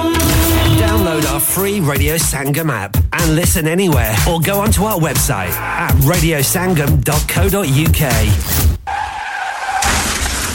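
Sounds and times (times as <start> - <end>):
car crashing in an accident: 0.1 - 1.4, 8.9 - 10.5
speech: 1.9 - 8.7
car tire squeal as the car skids: 8.9 - 10.5.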